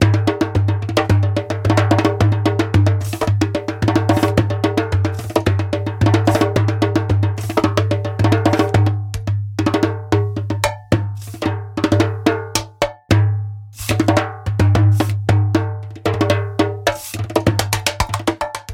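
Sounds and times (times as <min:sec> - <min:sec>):
naked doumbek drumming: 0:00.0 - 0:18.7.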